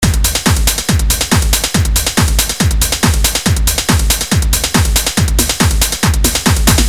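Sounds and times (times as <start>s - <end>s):
hard drum hits: 0.0s - 6.8s.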